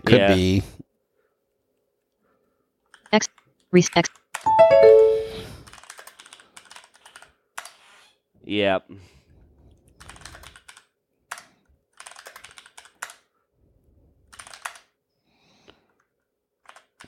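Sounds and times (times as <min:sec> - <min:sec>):
speech: 0:00.1 - 0:00.8, 0:03.1 - 0:05.0, 0:08.5 - 0:09.2
typing on a desktop computer keyboard: 0:05.7 - 0:07.8, 0:09.9 - 0:13.3, 0:14.3 - 0:15.0, 0:16.6 - 0:17.0.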